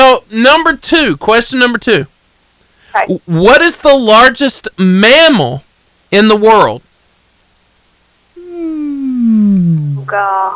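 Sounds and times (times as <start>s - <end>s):
speech: 0.2s - 2.1s, 2.9s - 6.9s, 9.3s - 10.5s
person imitating a whale call: 8.4s - 10.5s.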